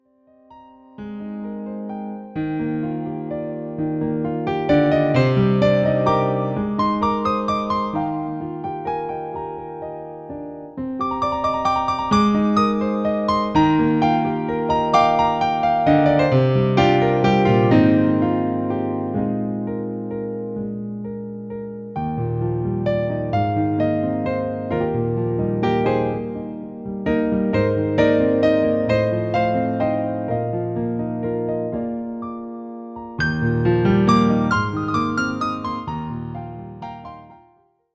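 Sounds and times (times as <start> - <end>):
classical piano music: 0.0 - 37.8.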